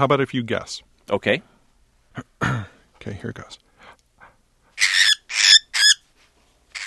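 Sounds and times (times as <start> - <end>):
speech: 0.0 - 1.5, 2.2 - 3.6
voice imitating an angry cockatiel screeching and squawking: 4.8 - 6.0.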